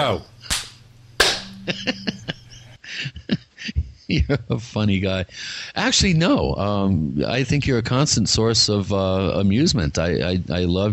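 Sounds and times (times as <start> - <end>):
speech: 0.0 - 0.3, 1.6 - 2.2, 4.1 - 10.9
low steady hum: 0.0 - 10.9
loud sharp slap: 0.4 - 1.6
laughter: 1.6 - 4.6.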